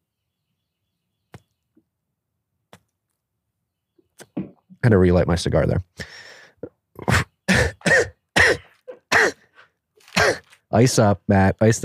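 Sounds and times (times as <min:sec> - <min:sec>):
speech: 0:04.8 - 0:06.1, 0:10.8 - 0:11.8
person coughing in a harsh hacking fit: 0:07.0 - 0:10.6.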